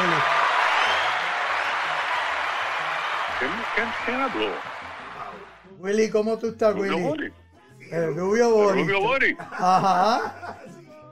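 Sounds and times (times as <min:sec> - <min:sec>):
crowd applauding: 0:00.0 - 0:05.7
speech: 0:03.4 - 0:04.8, 0:05.8 - 0:10.6
laughter: 0:09.4 - 0:10.9.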